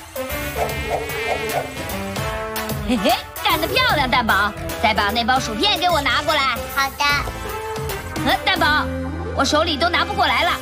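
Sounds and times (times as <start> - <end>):
housefly buzzing: 0.0 - 3.8
speech: 2.9 - 7.5, 8.2 - 10.6.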